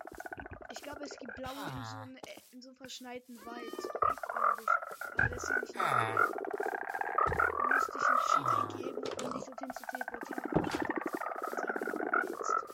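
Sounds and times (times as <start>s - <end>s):
video game frog croaking: 0.0s - 2.3s, 3.4s - 12.7s
speech: 0.8s - 10.9s.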